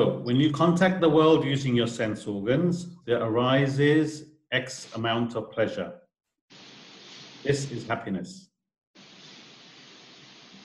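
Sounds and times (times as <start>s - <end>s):
speech: 0.0s - 6.6s, 7.4s - 8.5s
broadband static hiss from an open microphone: 6.5s - 8.1s, 9.0s - 10.6s.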